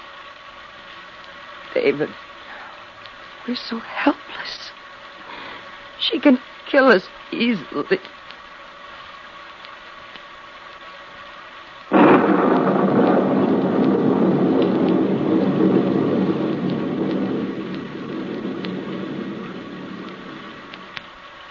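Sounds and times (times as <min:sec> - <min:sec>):
steady heavy rain hissing: 0:00.0 - 0:21.5
speech: 0:01.7 - 0:02.3, 0:03.4 - 0:04.7, 0:06.0 - 0:08.2
thunder crack rolling into a rumble: 0:11.9 - 0:21.3.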